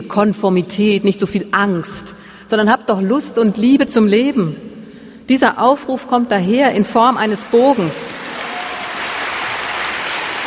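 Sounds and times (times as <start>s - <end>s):
speech: 0.1s - 4.7s, 5.3s - 8.2s
audience applause for a speaker at a public appearance: 7.5s - 10.4s.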